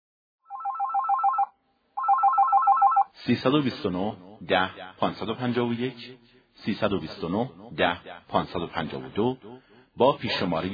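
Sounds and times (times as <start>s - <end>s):
telephone ringing in trilling electronic bursts: 0.4s - 3.1s
speech: 3.2s - 10.7s.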